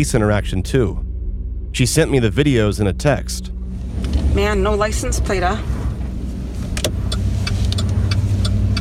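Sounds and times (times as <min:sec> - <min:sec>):
speech: 0:00.0 - 0:01.0, 0:01.7 - 0:03.6, 0:04.4 - 0:05.8
black truck engine rumbling: 0:00.0 - 0:08.7
light clicks and ticks: 0:06.8 - 0:08.7.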